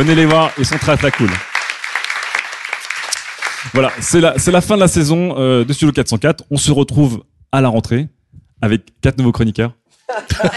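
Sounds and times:
speech: 0:00.0 - 0:01.5, 0:03.6 - 0:10.5
crowd clapping: 0:00.0 - 0:04.8
laughter: 0:10.1 - 0:10.5.

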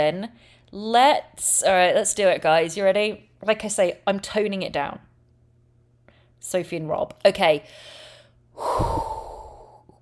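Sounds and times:
speech: 0:00.0 - 0:05.1, 0:06.4 - 0:08.0, 0:08.6 - 0:09.1
person taking a deep breath: 0:07.7 - 0:10.0.

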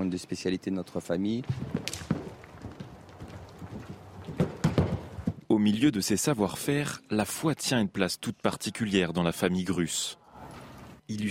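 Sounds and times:
speech: 0:00.2 - 0:02.2, 0:05.6 - 0:10.2, 0:11.1 - 0:11.2
horse hooves clip-clopping: 0:00.8 - 0:05.5.

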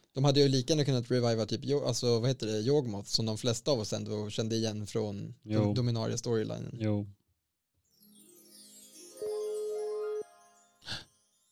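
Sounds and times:
speech: 0:00.2 - 0:07.2
electronic call tone as a new caller joins a phone call: 0:09.1 - 0:10.5.

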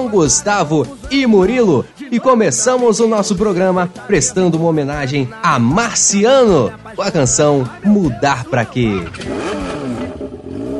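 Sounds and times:
speech: 0:00.0 - 0:09.8
motorcycle engine revving: 0:08.7 - 0:10.7.

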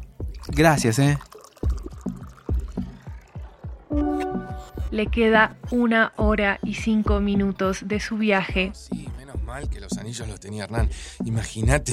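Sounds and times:
water pouring into a glass: 0:00.2 - 0:03.4
speech: 0:00.5 - 0:01.3, 0:05.0 - 0:11.9.

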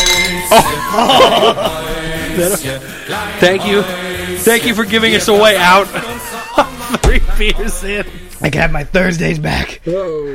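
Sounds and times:
beer glasses clinking together in a toast: 0:00.0 - 0:00.9
laughter: 0:00.4 - 0:04.3, 0:05.7 - 0:08.3
speech: 0:00.5 - 0:01.8, 0:02.4 - 0:10.3.

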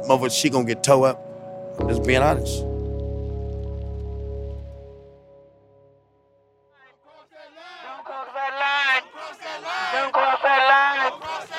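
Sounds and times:
speech: 0:00.0 - 0:02.7
protest crowd shouting in the street: 0:06.8 - 0:11.5.

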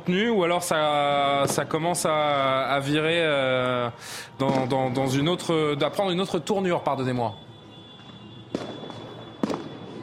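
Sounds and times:
speech: 0:00.0 - 0:07.5
fireworks bangs at festive celebrations: 0:01.2 - 0:02.2, 0:04.4 - 0:05.5, 0:07.7 - 0:10.0.

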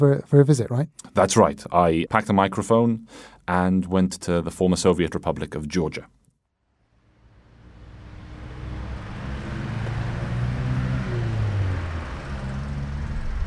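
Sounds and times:
speech: 0:00.0 - 0:06.2
road traffic roar beside a main road in Tbilisi Georgia: 0:07.0 - 0:13.4.

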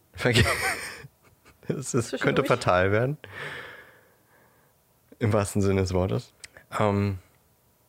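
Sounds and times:
speech: 0:00.2 - 0:00.8, 0:01.8 - 0:03.7, 0:05.2 - 0:07.2
laughter: 0:00.3 - 0:01.0, 0:02.2 - 0:02.9
deep airy inhale: 0:03.2 - 0:04.8.

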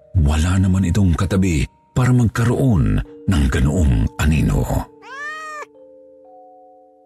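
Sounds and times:
speech: 0:00.3 - 0:04.9
cat meowing: 0:04.9 - 0:05.7.

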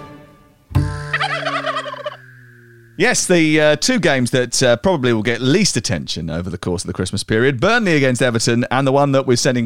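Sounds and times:
turkey gobbling: 0:00.9 - 0:03.1
speech: 0:03.0 - 0:09.6.

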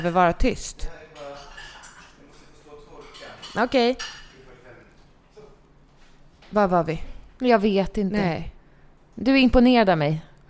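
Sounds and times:
dishes and cutlery clinking while unloading a dishwasher: 0:00.0 - 0:00.4, 0:01.1 - 0:05.4
speech: 0:00.0 - 0:01.3, 0:03.6 - 0:04.2, 0:06.5 - 0:08.6, 0:09.2 - 0:10.4.

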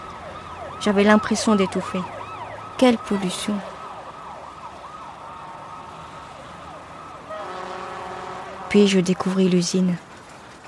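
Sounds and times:
wailing siren: 0:00.0 - 0:09.5
dense city traffic rumbling: 0:00.0 - 0:10.6
speech: 0:00.8 - 0:02.2, 0:02.8 - 0:03.7, 0:08.7 - 0:10.1
loud sustained car horns blaring: 0:07.3 - 0:09.3.

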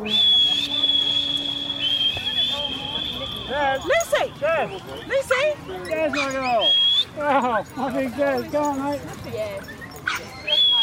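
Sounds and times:
person whistling to call a dog: 0:00.0 - 0:03.8, 0:06.6 - 0:07.1
speech: 0:03.6 - 0:10.2.

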